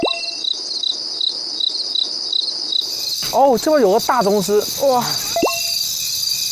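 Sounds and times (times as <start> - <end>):
cricket chirping with a high trill: 0.0 - 6.5
other insects buzzing: 0.0 - 6.5
speech: 3.4 - 5.2.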